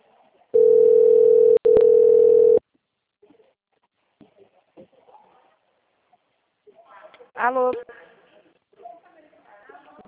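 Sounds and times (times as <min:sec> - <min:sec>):
telephone line tone as a call drops: 0:00.6 - 0:02.6
speech: 0:07.5 - 0:08.0.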